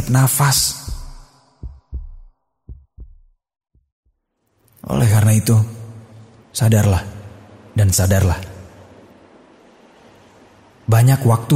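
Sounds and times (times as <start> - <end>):
speech: 0.0 - 0.9, 4.9 - 5.8, 6.6 - 7.2, 7.8 - 8.5, 10.9 - 11.5
heartbeat thumping in lub-dub pairs: 0.0 - 4.2.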